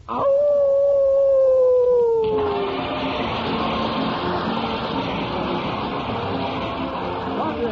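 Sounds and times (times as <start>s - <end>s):
stray dog howling at the door: 0.1s - 2.7s
dense wash of noise: 2.2s - 7.7s.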